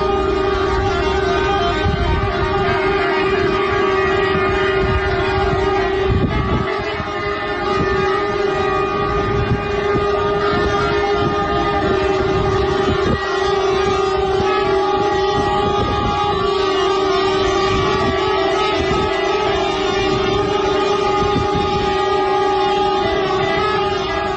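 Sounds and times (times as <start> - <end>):
many truck horns honking in protest at a border customs post: 0.0 - 24.3.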